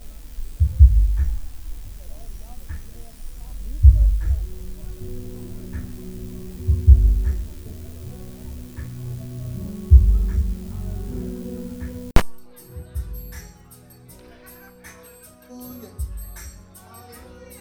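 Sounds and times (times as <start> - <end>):
church music recorded using broken microphones: 0.0 - 12.2.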